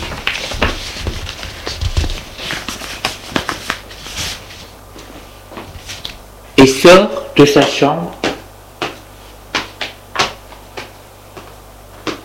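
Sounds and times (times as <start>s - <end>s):
woman gathering and tidying sheets of paper in her bedroom: 0.0s - 6.2s
speech: 6.6s - 8.2s.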